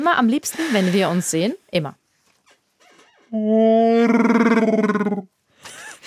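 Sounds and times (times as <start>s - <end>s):
speech: 0.0s - 2.0s, 3.3s - 5.3s
person vocally imitating a Wookiee's growling roar: 3.3s - 5.3s.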